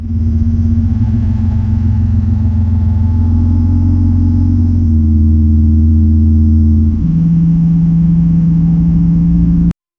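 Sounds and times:
flying car engine: 0.0 - 9.7.

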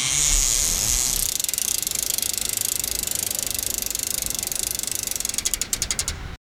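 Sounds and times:
bike tyres screeching: 0.1 - 6.4.

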